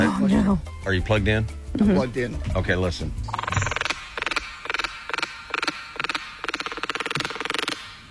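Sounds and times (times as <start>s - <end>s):
speech: 0.1s - 3.4s
frogmouth clicking purring call: 1.6s - 8.0s.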